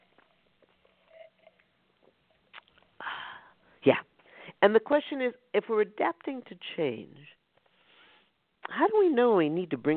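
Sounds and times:
sipping water with faint slurps: 0.0 - 3.0
speech: 3.8 - 7.4, 8.7 - 9.9.

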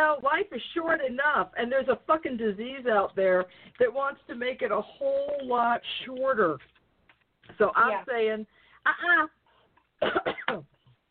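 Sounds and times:
speech: 0.0 - 6.8, 7.5 - 9.4, 10.0 - 10.8
person coughing: 10.0 - 11.1.

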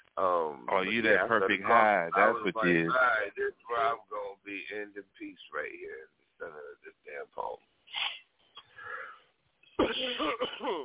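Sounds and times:
speech: 0.2 - 8.2, 9.8 - 10.8
person coughing after inhaling smoke: 9.8 - 10.8.

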